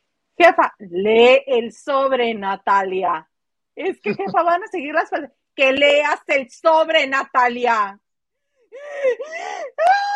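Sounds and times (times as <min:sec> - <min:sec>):
speech: 0:00.4 - 0:08.0, 0:08.7 - 0:10.1
person imitating a woman hyperventilating from crying: 0:08.6 - 0:10.1.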